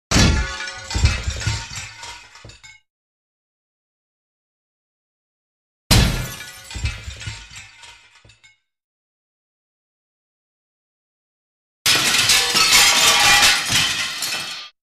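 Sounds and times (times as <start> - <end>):
glass window being smashed: 0.1 - 2.8, 5.9 - 8.6, 11.9 - 14.8.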